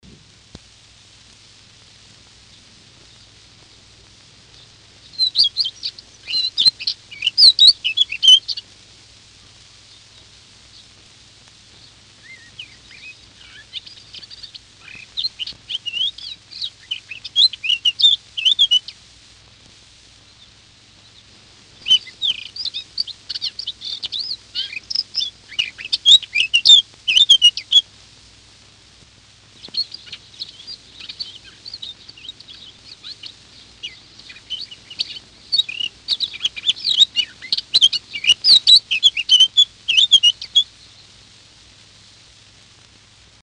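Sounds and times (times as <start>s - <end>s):
Eurasian blackcap singing: 4.5s - 8.7s, 11.7s - 19.0s, 20.3s - 27.8s, 29.6s - 41.1s.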